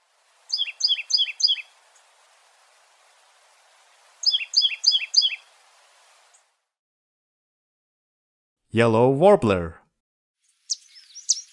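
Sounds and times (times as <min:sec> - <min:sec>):
faint background hiss: 0:00.0 - 0:06.6
titmouse calls of quick high downslurred notes: 0:00.5 - 0:01.7, 0:04.2 - 0:05.4, 0:10.7 - 0:11.5
speech: 0:08.7 - 0:09.8.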